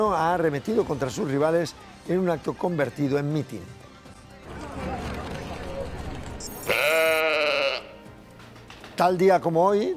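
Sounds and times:
speech: 0.0s - 3.8s, 9.0s - 9.9s
sheep bleating: 6.4s - 8.0s.

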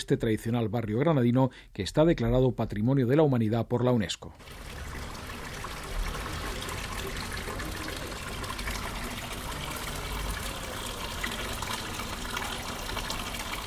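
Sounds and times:
speech: 0.0s - 4.8s
water running through a fountain: 4.4s - 13.6s.

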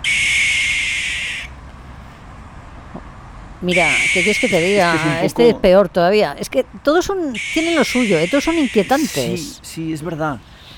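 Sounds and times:
barn owl screeching at night: 0.0s - 1.5s, 3.6s - 5.4s, 7.3s - 9.6s
quiet night background: 0.0s - 10.7s
speech: 3.6s - 10.5s.

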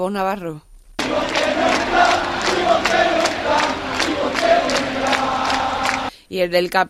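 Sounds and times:
large crowd of basketball fans roaring and chanting in an arena: 1.0s - 6.1s
steady rhythmic clapping: 1.0s - 6.8s.

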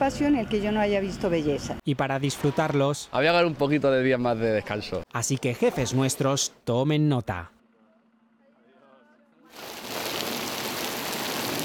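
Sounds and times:
speech: 0.0s - 7.6s
heavy afternoon rain shower with hail over Zaragoza: 9.6s - 11.6s.

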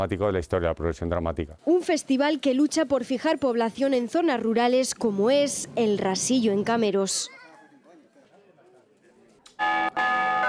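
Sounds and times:
speech: 0.0s - 7.4s
church bell ringing: 9.6s - 10.4s.

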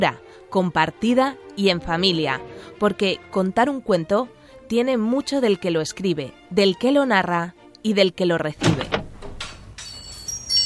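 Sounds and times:
speech: 0.0s - 9.0s
door latch clicks: 8.6s - 9.9s
door creaking open: 8.6s - 10.4s.

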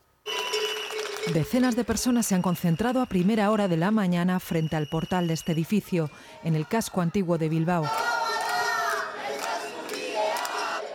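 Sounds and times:
speech: 1.3s - 8.1s
protesters chanting slogans in unison to stop an eviction: 6.4s - 10.9s.

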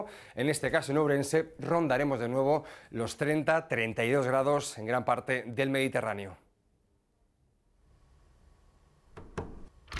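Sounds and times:
speech: 0.0s - 6.4s
locked door rattling as someone tries the handle: 9.2s - 9.9s.

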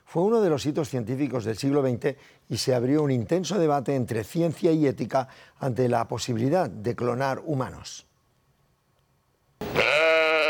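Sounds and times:
speech: 0.1s - 8.1s
cloned sheep bleating: 9.6s - 10.4s.

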